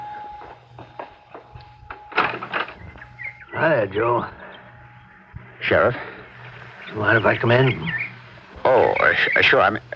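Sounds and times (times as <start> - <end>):
door being opened: 2.1 - 3.0
speech: 3.6 - 4.4, 5.7 - 6.1, 6.9 - 8.0, 8.7 - 9.9.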